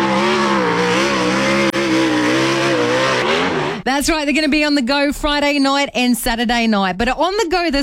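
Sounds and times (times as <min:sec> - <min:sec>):
sprint car racing engines roaring: 0:00.0 - 0:03.9
speech: 0:04.0 - 0:07.8.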